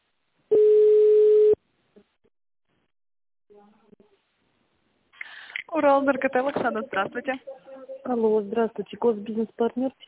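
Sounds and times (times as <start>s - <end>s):
telephone line ringing while an automated phone system connects a call: 0.5s - 1.6s
speech: 5.7s - 10.0s.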